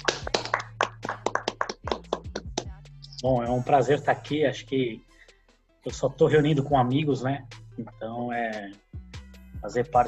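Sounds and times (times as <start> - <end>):
small group clapping to welcome a guest: 0.0 - 2.7
speech: 3.2 - 5.1, 5.8 - 8.8, 9.6 - 10.0.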